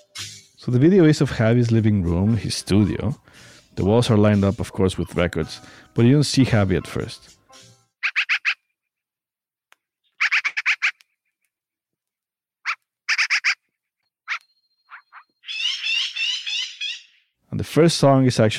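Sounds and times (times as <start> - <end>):
speech: 0.6 - 7.4, 17.6 - 18.5
recorded American crows cawing: 8.0 - 8.6, 10.2 - 11.0, 12.7 - 13.6, 14.3 - 17.2.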